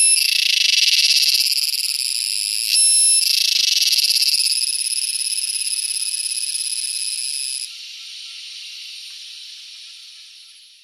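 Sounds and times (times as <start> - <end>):
Purana sagittata cicada singing a loud continuous pulsing buzz: 0.0 - 10.7.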